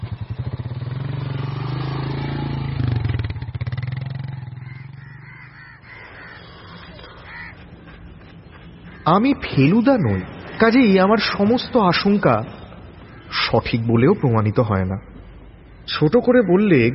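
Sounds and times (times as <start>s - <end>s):
motorcycle engine idling as the bike is moved into a garage: 0.0s - 9.0s
speech: 9.1s - 12.6s, 13.3s - 15.1s, 15.9s - 16.9s.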